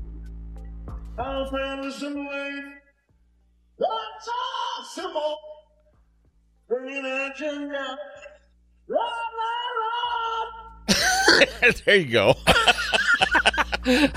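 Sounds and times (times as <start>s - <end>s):
person singing rock unaccompanied in strained wailing phrases: 1.2s - 2.8s, 3.8s - 5.5s, 6.7s - 11.7s
speech: 1.2s - 2.8s, 3.8s - 5.5s, 6.7s - 8.2s, 8.9s - 9.5s, 11.3s - 14.1s
laughter: 10.9s - 14.1s.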